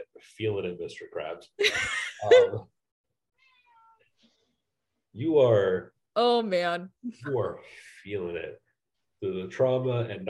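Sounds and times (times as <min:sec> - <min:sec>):
speech: 0:00.2 - 0:02.8, 0:05.2 - 0:08.6, 0:09.2 - 0:10.2
cat meowing: 0:03.4 - 0:04.1.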